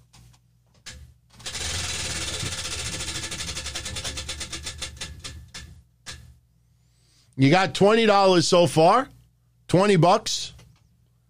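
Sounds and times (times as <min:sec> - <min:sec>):
prize wheel spinning with clicker rattling: 0:01.4 - 0:06.2
speech: 0:07.4 - 0:10.4.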